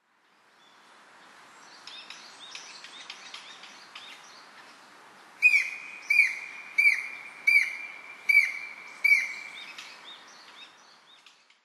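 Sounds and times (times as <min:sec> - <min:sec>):
Japanese Green Woodpecker calling in Kokubunji: 0:05.4 - 0:09.8.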